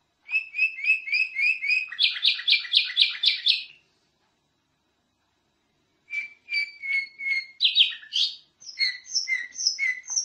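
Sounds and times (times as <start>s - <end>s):
champion canary singing in chatty gacor style: 0.3s - 3.8s, 6.1s - 10.2s.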